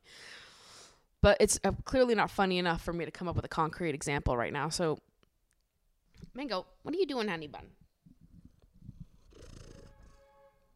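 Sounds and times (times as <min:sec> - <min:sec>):
speech: 0:01.2 - 0:05.1, 0:06.4 - 0:07.8
cat purring: 0:08.1 - 0:10.2.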